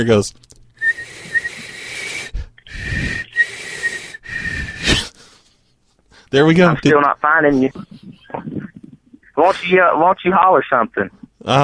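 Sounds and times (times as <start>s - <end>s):
speech: 0.0s - 0.5s, 6.3s - 8.5s, 9.4s - 11.6s
person whistling a steady breathy note: 0.8s - 5.1s.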